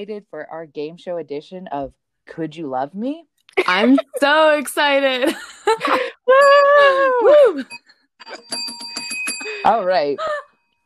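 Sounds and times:
speech: 0.0s - 8.8s, 9.5s - 10.4s
laughter: 3.6s - 4.2s, 5.2s - 7.7s
bright metallic bell dinging: 7.6s - 10.8s.

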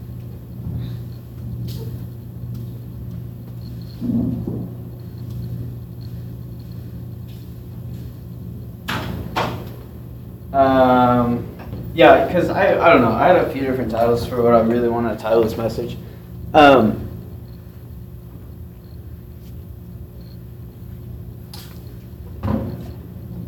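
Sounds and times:
steady low room rumble: 0.0s - 23.4s
door swinging shut with thud and latch clatter: 8.9s - 9.7s
speech: 12.0s - 17.0s.

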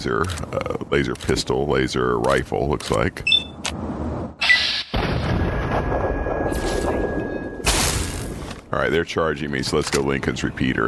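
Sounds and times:
speech: 0.0s - 3.9s, 8.7s - 10.8s
missile launcher explosion in a video game firefight: 5.0s - 8.4s.

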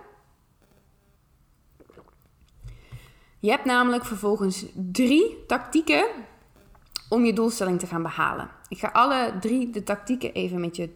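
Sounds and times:
person sipping water: 1.7s - 3.2s
soft wet gulps of water: 1.7s - 3.2s
speech: 3.4s - 6.3s, 7.1s - 10.9s.

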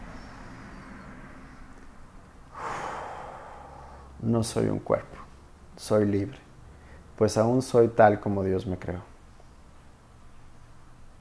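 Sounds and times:
deep breath in through the nose and out through the mouth: 2.5s - 4.2s, 6.6s - 7.2s
speech: 4.2s - 5.2s, 5.8s - 6.4s, 7.2s - 9.1s.

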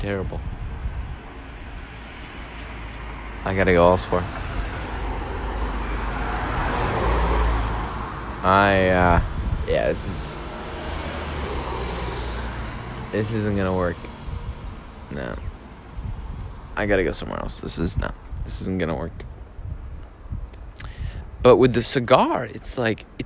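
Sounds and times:
speech: 0.0s - 0.6s, 3.4s - 4.4s, 8.4s - 10.4s, 13.1s - 14.1s, 15.1s - 15.5s, 16.8s - 19.2s, 21.4s - 23.2s
passing cars and road traffic: 0.0s - 21.4s.

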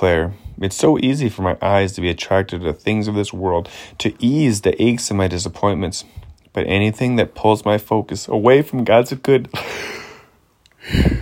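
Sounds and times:
speech: 0.0s - 10.0s, 10.8s - 11.1s
breathy inhale: 3.7s - 4.0s, 9.6s - 11.1s.

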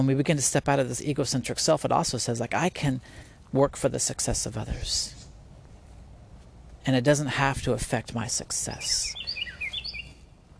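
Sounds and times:
speech: 0.0s - 5.2s, 6.8s - 9.3s
low outdoor rumble: 0.0s - 10.5s
finch singing: 8.5s - 10.3s.

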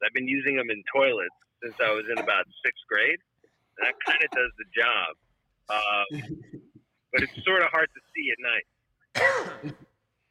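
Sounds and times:
speech: 0.2s - 9.9s
raspy throat clearing with a short cough: 1.8s - 2.4s, 3.9s - 4.6s, 7.2s - 7.5s, 9.2s - 10.0s.

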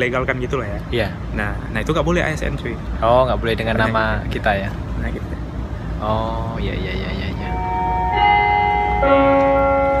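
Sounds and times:
speech: 0.0s - 5.4s, 6.0s - 7.3s, 9.0s - 9.5s
bell ringing: 7.4s - 9.9s.

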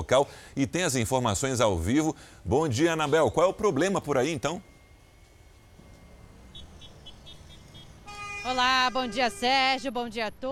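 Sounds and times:
speech: 0.0s - 4.7s, 8.4s - 10.5s
steady rumble of road traffic: 0.0s - 10.5s
short car horn beeps: 3.0s - 9.7s
car horns honking in a traffic jam: 4.6s - 10.1s
loud sustained car horn blast: 5.6s - 9.8s.

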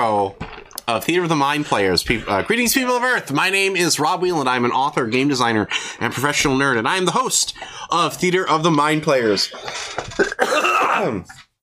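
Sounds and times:
speech: 0.0s - 11.5s
coughing fit: 9.5s - 11.5s.

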